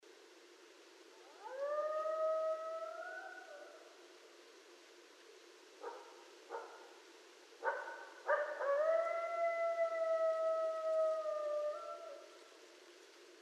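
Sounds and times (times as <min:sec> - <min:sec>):
coyote howling at night: 0:01.2 - 0:03.9, 0:08.3 - 0:12.3.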